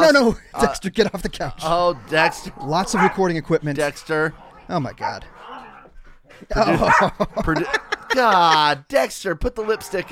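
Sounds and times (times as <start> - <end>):
laughter: 0.0 - 3.1, 6.4 - 8.8
speech: 0.1 - 5.6, 6.4 - 10.1
dog whiny yelps: 2.2 - 3.2, 4.4 - 5.9, 6.6 - 8.2
dog barking excitedly: 2.2 - 3.3, 6.6 - 8.2.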